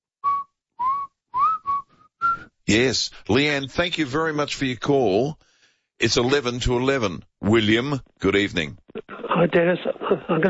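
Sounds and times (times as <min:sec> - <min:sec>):
person whistling a short song melody: 0:00.2 - 0:02.5
speech: 0:02.7 - 0:08.8, 0:09.4 - 0:10.4.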